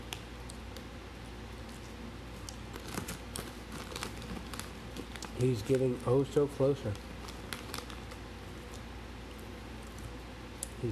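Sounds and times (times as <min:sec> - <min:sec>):
steady low noise: 0:00.0 - 0:10.8
paper rustling and crinkling while folded into a paper football: 0:01.6 - 0:08.8
speech: 0:05.4 - 0:07.1.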